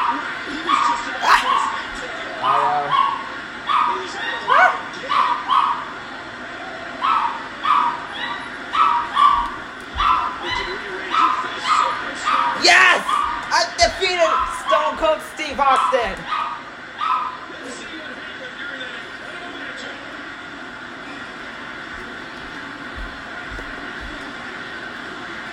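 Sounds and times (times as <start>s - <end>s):
female dog howling and barking: 0.0s - 6.0s, 7.0s - 15.0s, 15.6s - 17.5s.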